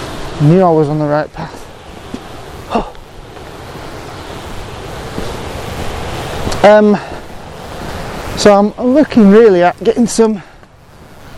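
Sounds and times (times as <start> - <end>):
waterfall rushing water: 0.0 - 11.3
speech: 0.4 - 1.6, 2.7 - 3.0, 6.6 - 7.1, 8.4 - 10.5.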